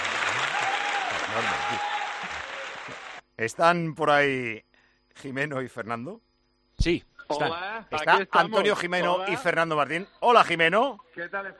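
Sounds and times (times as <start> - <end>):
crowd applauding: 0.0 - 3.2
speech: 1.4 - 2.0, 3.4 - 11.5.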